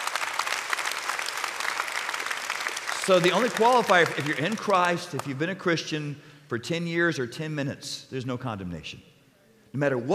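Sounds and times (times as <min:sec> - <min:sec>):
audience applause: 0:00.0 - 0:05.4
speech: 0:03.1 - 0:09.1, 0:09.7 - 0:10.1.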